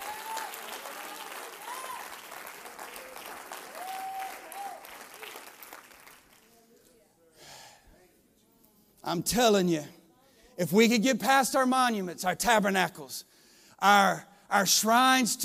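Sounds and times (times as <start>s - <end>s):
crowd cheering and shouting to the Lord: 0.0s - 2.2s, 3.7s - 4.8s
crowd clapping: 0.0s - 6.7s
speech: 9.1s - 10.0s, 10.6s - 15.4s.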